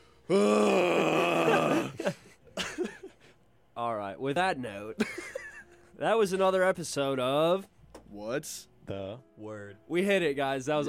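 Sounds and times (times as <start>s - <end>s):
speech: 0.3s - 0.6s, 4.2s - 5.2s, 6.0s - 10.8s
voice imitating a loud yelling snore: 0.3s - 1.9s.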